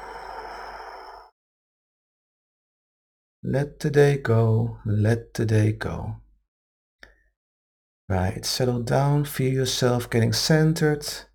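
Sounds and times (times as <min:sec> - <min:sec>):
deep exhale through the mouth during a centering breathing exercise: 0:00.0 - 0:01.3
speech: 0:03.4 - 0:06.2, 0:08.1 - 0:11.3.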